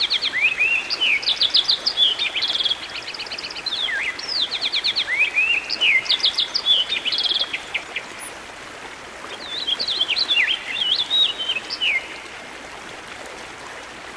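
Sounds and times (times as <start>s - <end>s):
songbird song of high twittering notes, quick trills and swooping whistles: 0.0s - 8.4s, 9.3s - 12.4s.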